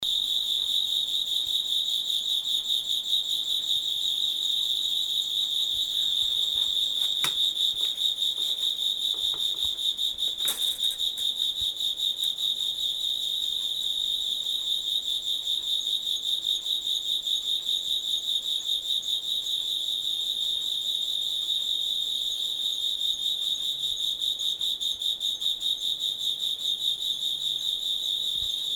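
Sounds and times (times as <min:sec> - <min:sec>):
insect chirping: 0:00.0 - 0:28.7.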